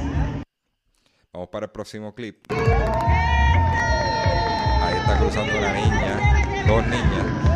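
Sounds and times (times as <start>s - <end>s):
speech: 1.3s - 3.4s, 5.1s - 7.5s
high whoops and yells of parents: 2.5s - 6.7s
crowd of parents cheering and shouting for children running a race: 2.5s - 7.5s.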